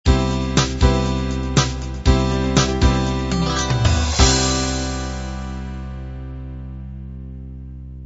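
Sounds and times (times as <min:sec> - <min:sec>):
half-time 8 and 16 beat drum ending: 0:00.1 - 0:05.4.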